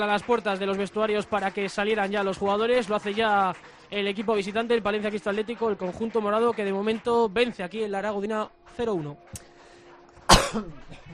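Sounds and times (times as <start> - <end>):
speech: 0.0 - 9.5, 10.3 - 11.0
person coughing: 10.3 - 11.1.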